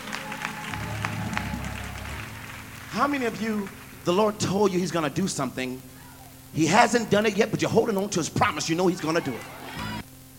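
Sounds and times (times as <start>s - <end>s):
hands clapping: 0.0s - 4.0s
low murmuring room hum: 0.0s - 9.4s
speech: 3.0s - 5.9s, 6.5s - 9.6s.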